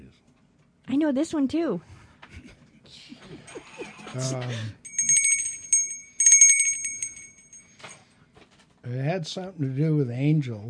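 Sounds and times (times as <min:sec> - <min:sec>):
speech: 0:00.9 - 0:02.0, 0:04.1 - 0:04.8, 0:08.8 - 0:10.6
small bell jingling: 0:04.8 - 0:08.0.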